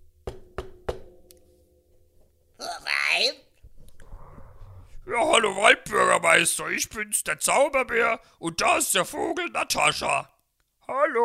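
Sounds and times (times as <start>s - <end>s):
knocking on a door: 0.2s - 1.1s
speech: 5.1s - 10.3s.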